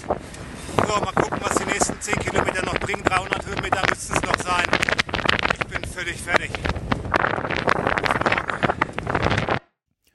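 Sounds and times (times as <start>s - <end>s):
strong wind buffeting a microphone high up on a trail: 0.0s - 9.6s
speech: 0.9s - 4.3s.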